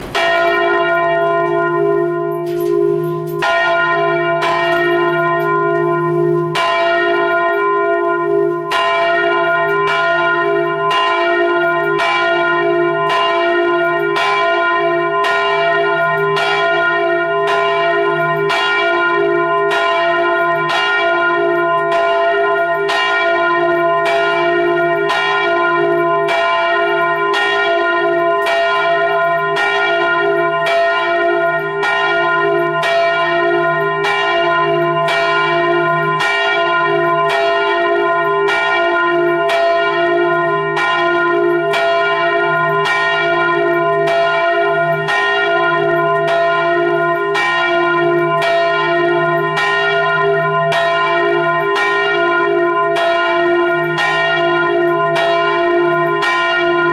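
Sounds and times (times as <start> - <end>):
church bell in F1: 0.0 - 56.9.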